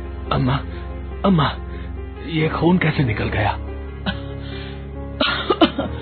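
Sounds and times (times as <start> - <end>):
speech: 0.3 - 1.7, 2.3 - 3.7
woman coughing: 5.2 - 5.9.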